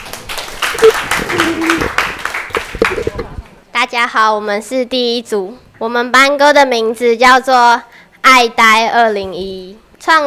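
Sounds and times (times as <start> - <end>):
room full of people applauding: 0.0 - 3.4
speech: 3.9 - 10.2.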